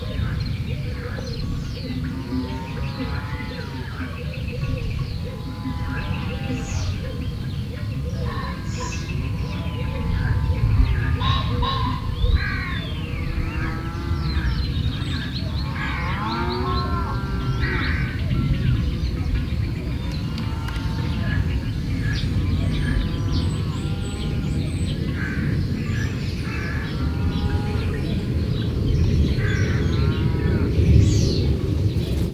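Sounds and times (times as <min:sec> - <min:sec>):
windy weather on the puszta in Hortobágy National Park: 0:00.0 - 0:32.3
aircraft flying over the puszta in Hortobágy National Park: 0:16.7 - 0:32.3.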